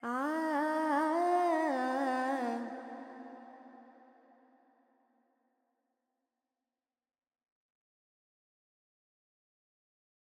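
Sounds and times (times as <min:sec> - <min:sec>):
Carnatic female vocals singing pentatonic alaps in G: 0:00.0 - 0:03.4.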